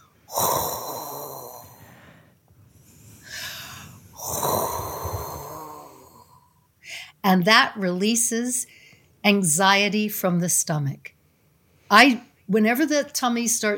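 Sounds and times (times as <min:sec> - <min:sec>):
breath pushed against the soft palate at the back of the throat: 0:00.0 - 0:06.6
speech: 0:07.3 - 0:11.2, 0:11.9 - 0:13.7.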